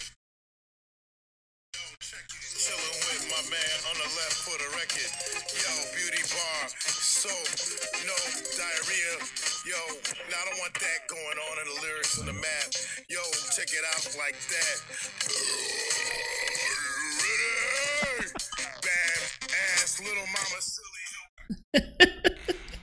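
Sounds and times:
speech: 2.0 - 16.4, 20.0 - 22.1
long drawn-out burp: 12.2 - 12.5, 15.3 - 16.4
laughter: 17.0 - 18.8, 21.5 - 22.8.

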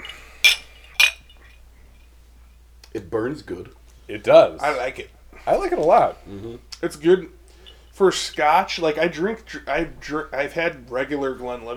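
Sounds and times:
glasses clinking in a toast: 0.0 - 2.0, 7.5 - 9.0
speech: 3.0 - 7.4, 8.0 - 11.7.

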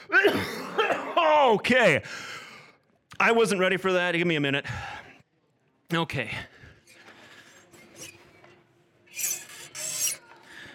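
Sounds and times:
speech: 1.5 - 2.3, 3.2 - 5.0, 5.9 - 6.5
faint creaks and rubbing: 6.8 - 10.7
dry scraping rasp: 9.1 - 10.3.

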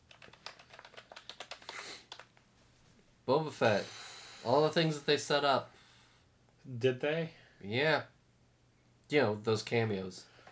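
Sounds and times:
fingers typing on a computer keyboard: 0.0 - 2.4
speech: 3.3 - 5.8, 6.6 - 8.1, 9.1 - 10.3.

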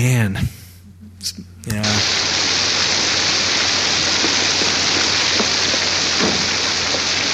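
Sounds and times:
heavy rain falling: 1.8 - 7.3
sharper rain drips and splashes: 2.0 - 7.3.

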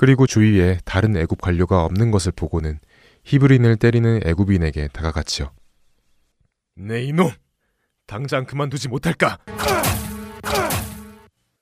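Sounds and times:
speech: 0.0 - 5.6, 6.8 - 7.4, 8.1 - 10.8
punch hit sound effect with swooshing ringing tail: 9.5 - 11.3.

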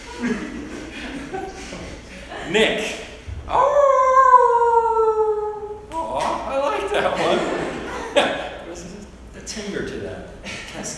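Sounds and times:
laughter: 0.0 - 2.9, 6.1 - 8.8
speech: 0.2 - 0.6, 2.5 - 3.7
person imitating a werewolf howl: 3.5 - 6.6.

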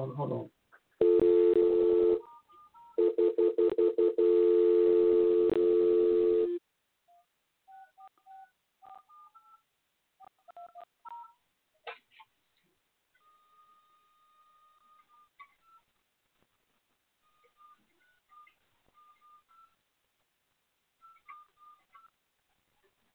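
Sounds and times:
telephone keypad dialing tones while calling in over Skype: 1.0 - 2.3, 3.0 - 6.6.

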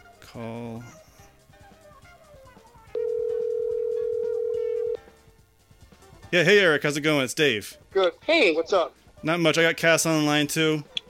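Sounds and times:
faint music: 0.0 - 11.0
speech: 0.4 - 1.0, 6.3 - 10.9
phone dialing tone: 3.0 - 5.0.

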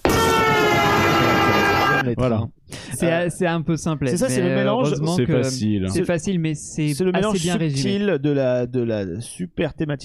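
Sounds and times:
train horn blast: 0.0 - 2.0
speech: 2.1 - 10.0.

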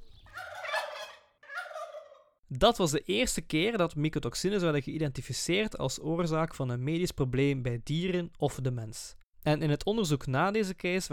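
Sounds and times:
turkey gobbling: 0.0 - 2.4
speech: 2.5 - 11.1.

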